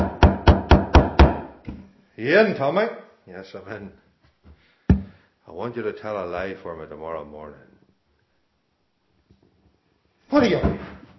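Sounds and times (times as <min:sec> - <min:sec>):
firm knocking on a door: 0:00.0 - 0:01.5
speech: 0:02.2 - 0:04.0, 0:05.5 - 0:07.7, 0:10.3 - 0:11.0.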